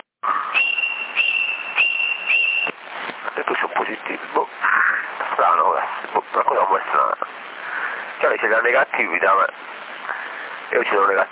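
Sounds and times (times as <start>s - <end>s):
CB radio hiss: 0.2s - 0.7s, 2.5s - 11.3s
person whistling over a CB radio link: 0.4s - 2.7s
speech: 8.5s - 9.8s, 10.7s - 11.3s.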